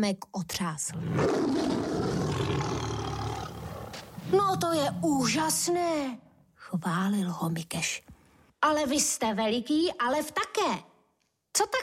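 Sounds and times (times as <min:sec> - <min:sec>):
speech: 0:00.0 - 0:03.0, 0:04.3 - 0:10.9, 0:11.6 - 0:11.8
lion roaring: 0:00.9 - 0:05.0.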